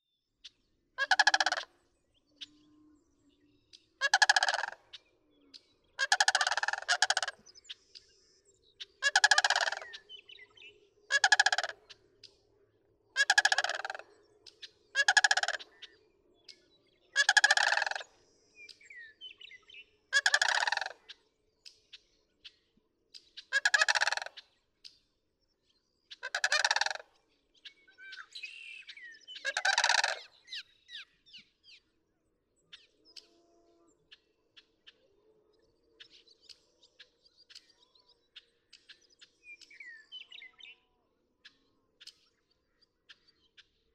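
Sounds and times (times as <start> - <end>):
Sandhill Crane calling: 1.0 - 1.7, 4.0 - 5.0, 6.0 - 7.4, 9.0 - 11.9, 13.2 - 14.1, 15.0 - 15.8, 17.2 - 18.1, 20.2 - 21.0, 23.5 - 24.4, 26.2 - 27.1, 28.1 - 31.0.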